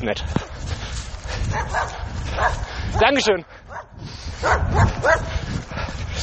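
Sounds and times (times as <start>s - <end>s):
speech: 0.0s - 0.8s, 1.5s - 5.5s
steady outdoor noise: 0.0s - 6.2s
dog barking: 1.5s - 2.7s, 3.7s - 5.3s.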